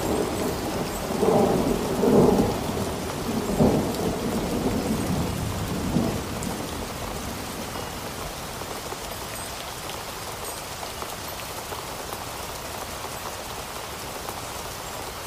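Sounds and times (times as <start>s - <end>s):
storm thunder rolling low and heavy: 0.0s - 7.6s
steady rain: 0.0s - 15.2s.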